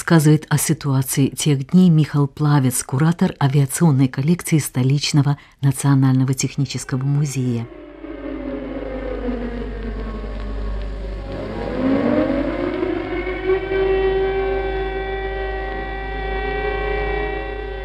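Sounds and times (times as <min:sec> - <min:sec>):
speech: 0:00.1 - 0:07.8
constant low rumble: 0:06.9 - 0:16.0
air raid siren wailing: 0:06.9 - 0:17.8.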